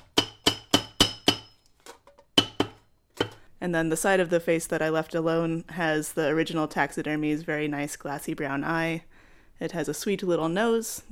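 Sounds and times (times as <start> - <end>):
hammer striking metal parts of a taxidermy piece: 0.0 - 1.6, 2.4 - 3.4
speech: 3.6 - 11.0.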